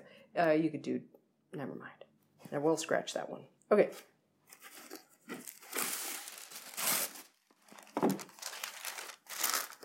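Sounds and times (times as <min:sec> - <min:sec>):
speech: 0:00.4 - 0:04.1
wax paper crinkling as a layered cake is put on it: 0:04.5 - 0:09.8.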